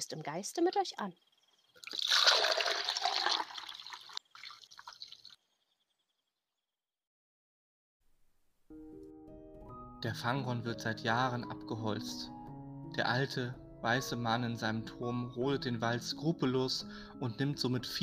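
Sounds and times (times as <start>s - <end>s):
speech: 0.0s - 1.4s, 10.0s - 12.4s, 13.0s - 18.0s
fresh spring water trickling and splashing: 1.4s - 5.8s
soft music: 8.6s - 18.0s.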